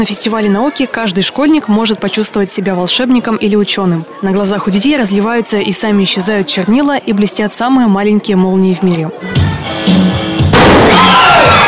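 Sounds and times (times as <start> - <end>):
speech: 0.0 - 10.1
crowd noise in an assembly hall at a science festival: 0.0 - 11.6
liquid nitrogen explosion on a stage in an assembly hall: 10.5 - 11.4.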